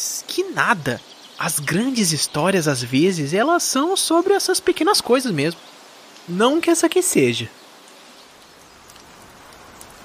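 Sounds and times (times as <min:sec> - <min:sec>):
speech: 0:00.0 - 0:05.7, 0:06.3 - 0:07.6
heavy rain pouring down: 0:00.0 - 0:10.0.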